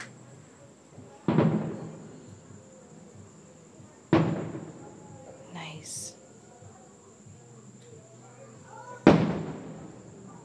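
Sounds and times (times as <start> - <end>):
fireworks going off in the distance: 1.0 - 2.6, 3.2 - 5.8, 9.0 - 10.4.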